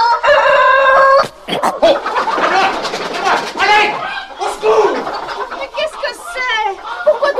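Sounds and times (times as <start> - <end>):
rooster crowing: 0.0 - 2.3
hens clucking and squawking: 0.0 - 7.3
laughter: 1.2 - 7.3.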